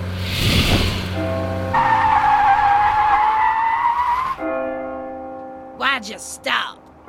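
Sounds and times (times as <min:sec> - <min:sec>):
tires squealing: 0:00.0 - 0:04.5
car accelerating hard: 0:00.0 - 0:04.9
speech: 0:06.1 - 0:06.8.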